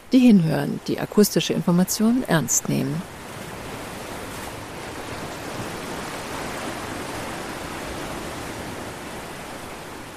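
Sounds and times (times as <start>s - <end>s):
speech: 0.1s - 3.2s
surf rolling onto a beach: 3.0s - 10.1s.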